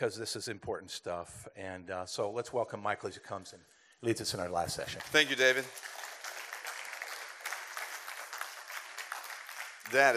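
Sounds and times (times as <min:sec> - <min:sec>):
speech: 0:00.0 - 0:06.0, 0:09.9 - 0:10.1
light scattered golf clap applause from a small audience: 0:04.9 - 0:10.1.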